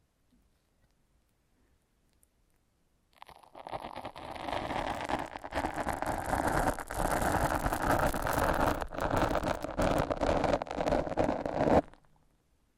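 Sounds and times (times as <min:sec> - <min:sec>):
foam rubbed in crackling squeaky scrubbing: 0:03.6 - 0:12.0.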